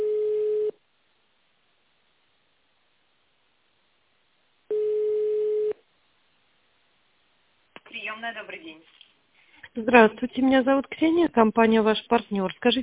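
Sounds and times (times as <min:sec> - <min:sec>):
telephone ringback tone while a call is forwarded to an operator: 0:00.0 - 0:00.7, 0:04.7 - 0:05.8
speech: 0:08.2 - 0:09.0, 0:09.7 - 0:12.8.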